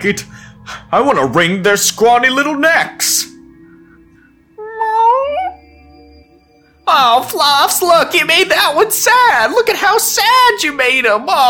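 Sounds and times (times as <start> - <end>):
speech: 0.0 - 3.4, 6.9 - 11.4
cat meowing: 4.6 - 5.6.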